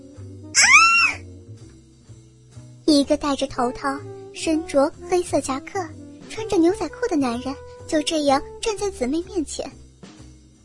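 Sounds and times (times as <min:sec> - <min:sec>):
woman in a bathroom shower screaming in terror: 0:00.6 - 0:01.2
speech: 0:02.9 - 0:09.8.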